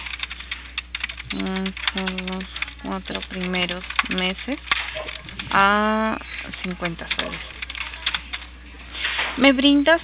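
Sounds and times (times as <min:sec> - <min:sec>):
typing on a computer keyboard: 0:00.0 - 0:05.8, 0:06.4 - 0:08.5
speech: 0:01.4 - 0:07.6, 0:09.4 - 0:10.0.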